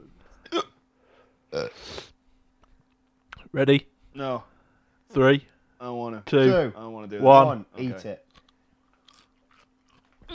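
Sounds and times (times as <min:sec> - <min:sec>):
person hiccupping: 0:00.4 - 0:00.8
speech: 0:03.5 - 0:04.5, 0:05.1 - 0:08.2.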